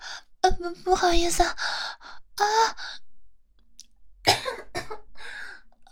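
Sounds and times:
speech: 0:00.6 - 0:01.7, 0:02.4 - 0:02.9
person coughing uncontrollably: 0:04.3 - 0:05.1.

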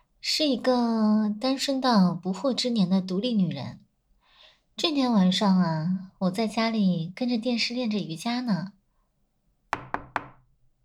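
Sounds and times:
speech: 0:00.2 - 0:03.8, 0:04.8 - 0:08.8
sharp knocks on a home's door late at night: 0:09.7 - 0:10.5.

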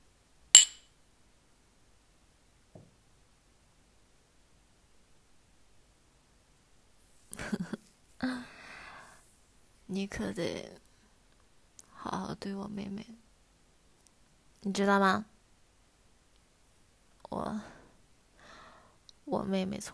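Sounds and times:
glasses clinking in a drinking toast: 0:00.6 - 0:00.8
speech: 0:09.9 - 0:10.8, 0:12.1 - 0:13.2, 0:14.6 - 0:15.3, 0:17.3 - 0:17.8, 0:19.3 - 0:19.9.

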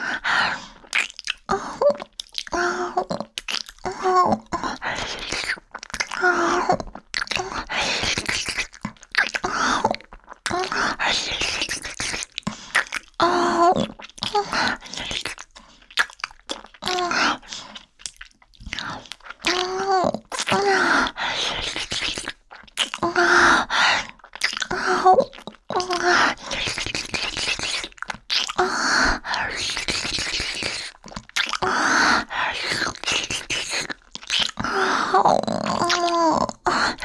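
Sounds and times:
wet chewing and biting on food: 0:00.5 - 0:37.0.

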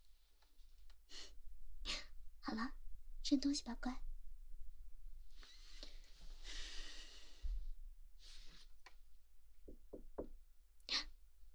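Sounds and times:
speech: 0:02.5 - 0:04.1
faint airy exhale: 0:05.4 - 0:07.6
soft breathy sighs: 0:05.4 - 0:08.6
quick knocks on a door: 0:09.7 - 0:10.4.

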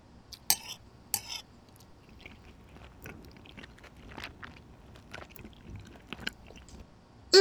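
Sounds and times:
chewing and biting of food while tasting it: 0:00.4 - 0:06.8
mouth clicks: 0:01.2 - 0:06.8.

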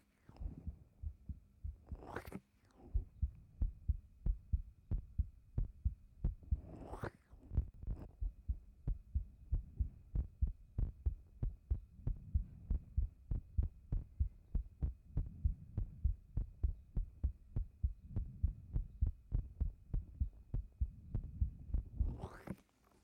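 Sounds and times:
fast heartbeat heard with ear on chest: 0:00.4 - 0:02.0, 0:03.0 - 0:06.8, 0:07.5 - 0:22.3.

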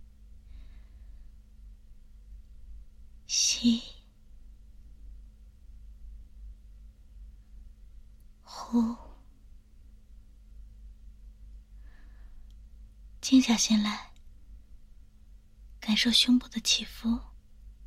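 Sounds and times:
faint steady low hum: 0:00.0 - 0:17.8
deep breathing during a guided relaxation exercise: 0:00.3 - 0:01.9, 0:11.5 - 0:12.9
speech: 0:03.6 - 0:03.9, 0:13.4 - 0:14.1, 0:16.0 - 0:17.3.

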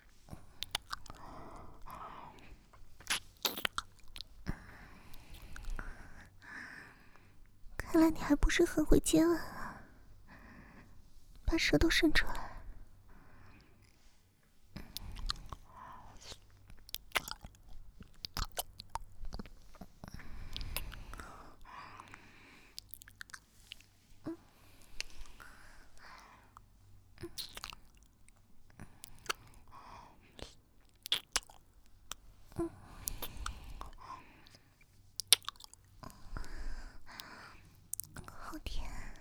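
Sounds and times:
strawberries being chewed: 0:00.2 - 0:02.0, 0:02.8 - 0:05.9, 0:14.8 - 0:24.1, 0:26.0 - 0:36.5, 0:37.1 - 0:38.5
speech: 0:08.0 - 0:09.5, 0:11.5 - 0:12.4.

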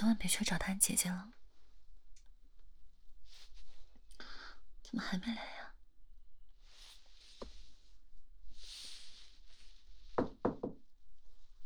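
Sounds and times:
speech: 0:00.0 - 0:01.4, 0:04.9 - 0:05.6
soft rustling: 0:01.4 - 0:04.1, 0:06.5 - 0:10.2
firm knocking on a door: 0:10.2 - 0:10.9.

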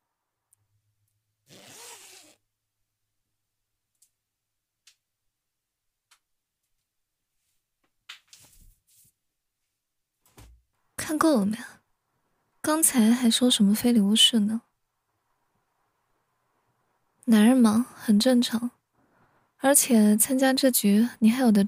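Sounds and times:
clothing zipper being unzipped: 0:01.4 - 0:02.4
speech: 0:11.1 - 0:11.8, 0:12.6 - 0:14.7, 0:17.3 - 0:18.8, 0:19.6 - 0:21.6.

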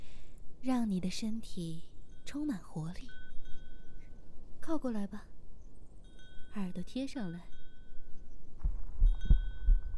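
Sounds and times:
speech: 0:00.6 - 0:03.2, 0:04.7 - 0:05.3, 0:06.6 - 0:07.5
human heartbeat: 0:08.6 - 0:09.9.

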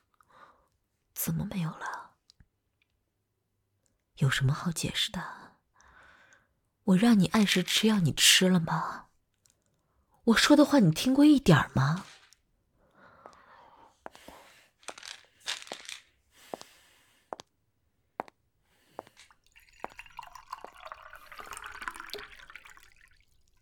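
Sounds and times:
speech: 0:01.2 - 0:02.0, 0:04.2 - 0:05.4, 0:06.9 - 0:09.0, 0:10.3 - 0:12.1
water pouring into a glass: 0:19.2 - 0:23.6.

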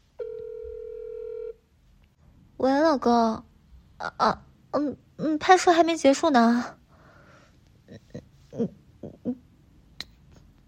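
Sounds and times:
electronic ringback tone of an outgoing phone call: 0:00.2 - 0:01.6
speech: 0:02.6 - 0:06.8, 0:08.6 - 0:09.4.

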